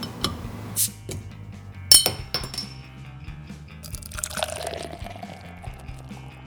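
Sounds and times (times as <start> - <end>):
hop water poured into glasses: 0.0 - 1.3, 1.9 - 2.8, 3.8 - 6.3
glasses clinking: 0.0 - 2.8, 3.9 - 5.9.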